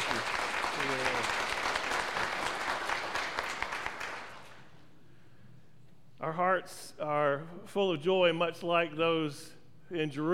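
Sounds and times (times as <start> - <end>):
audience applause: 0.0 - 4.7
speech: 6.4 - 10.3.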